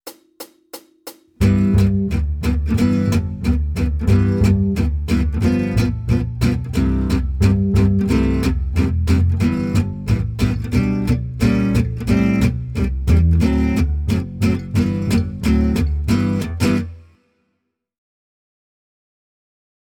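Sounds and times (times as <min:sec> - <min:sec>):
jazz guitar: 0:01.4 - 0:17.0.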